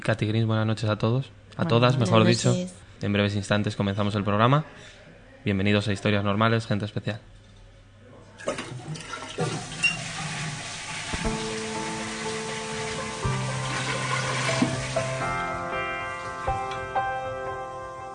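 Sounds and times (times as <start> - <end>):
speech: 0.0 - 7.4
toilet flushing: 8.4 - 16.6
toilet cistern refilling with a steady hiss and faint whistling tone: 9.4 - 15.4.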